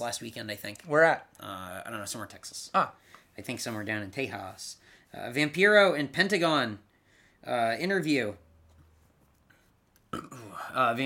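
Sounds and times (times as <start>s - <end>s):
speech: 0.0s - 8.4s, 10.1s - 11.0s
loud guttural belch: 10.1s - 10.8s.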